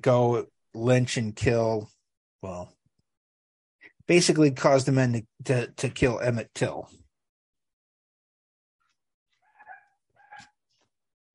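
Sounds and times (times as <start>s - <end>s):
speech: 0.0s - 2.8s, 4.1s - 7.0s
dog giving short yelping barks: 9.4s - 10.6s.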